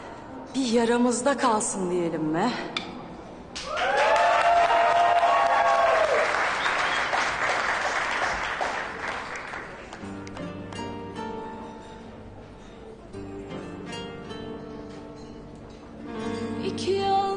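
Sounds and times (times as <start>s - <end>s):
speech: 0.5s - 2.9s
cheering voices: 3.6s - 7.0s
audience applause: 3.6s - 10.1s
music: 8.7s - 17.3s.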